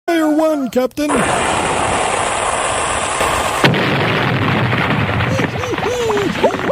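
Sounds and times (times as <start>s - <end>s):
speech: 0.6s - 1.7s
steady rushing noise: 1.1s - 6.7s
gunshot: 3.2s - 6.7s.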